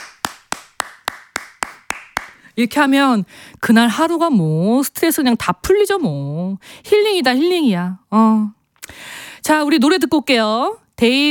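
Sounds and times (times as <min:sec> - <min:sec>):
crisp hand claps: 0:00.0 - 0:02.5
speech: 0:02.6 - 0:11.2.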